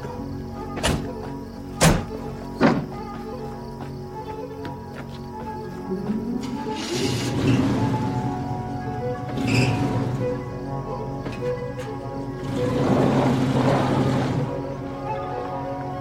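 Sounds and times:
faint insect chirps: 0:00.0 - 0:15.9
steady outdoor hum: 0:00.0 - 0:15.9
car doors thudding shut as people get into a car: 0:01.8 - 0:02.9
car engine starting: 0:06.1 - 0:15.2.

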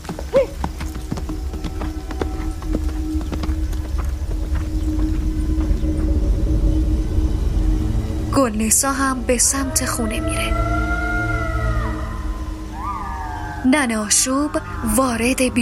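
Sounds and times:
hooves of a ridden horse clip-clopping: 0:00.0 - 0:06.4
low rumble: 0:00.6 - 0:15.6
speech: 0:08.5 - 0:10.7, 0:13.7 - 0:15.6.

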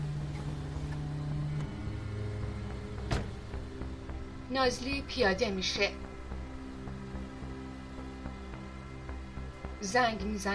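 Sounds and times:
car engine humming: 0:00.0 - 0:10.0
short sharp thump of car coming to rest: 0:03.0 - 0:03.4
speech: 0:04.5 - 0:06.0, 0:09.8 - 0:10.5.

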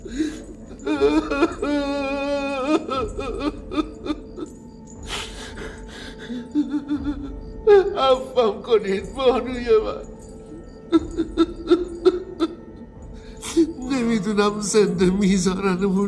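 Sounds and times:
sharp gasping breaths: 0:00.0 - 0:01.9, 0:03.0 - 0:07.6
person sobbing and wailing: 0:00.0 - 0:16.0
speech: 0:08.7 - 0:10.1, 0:14.4 - 0:16.0.

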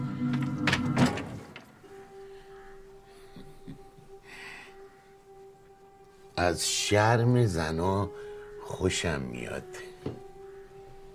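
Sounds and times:
door being opened as someone enters a house: 0:00.1 - 0:01.8
speech: 0:06.4 - 0:10.2.

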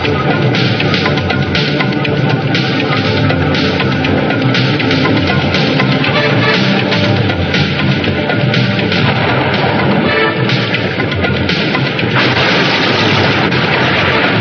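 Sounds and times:
dense roar of wind and sea: 0:00.1 - 0:14.3
distant cannon fire from a ship: 0:11.6 - 0:14.3.

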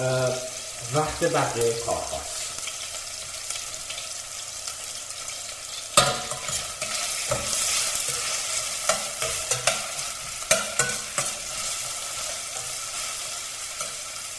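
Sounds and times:
speech: 0:00.0 - 0:02.4
onions sizzling over high heat in a steel pot: 0:00.0 - 0:14.3
spoon stirring and scraping onions in a steel pot: 0:06.0 - 0:13.1.

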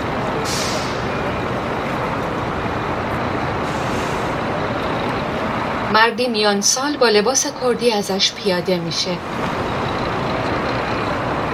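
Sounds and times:
large bus engine rumbling at a bus terminal in Erbil: 0:00.0 - 0:11.5
traffic noise at a bus terminal in Erbil: 0:00.0 - 0:11.5
bus air brakes hissing: 0:00.3 - 0:01.4, 0:03.5 - 0:04.7
speech: 0:05.9 - 0:09.6.

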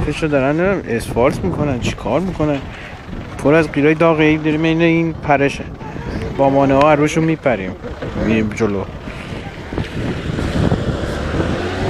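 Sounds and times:
speech: 0:00.0 - 0:05.8, 0:06.4 - 0:09.0
gusty wind buffeting the microphone outdoors: 0:00.0 - 0:11.8
car driving past: 0:08.9 - 0:11.8.

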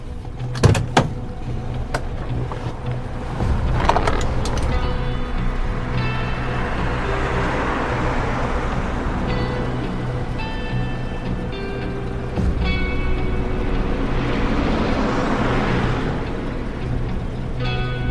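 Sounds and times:
car engine running as the vehicle drives: 0:00.0 - 0:18.0
sharp clunks: 0:00.5 - 0:01.2.

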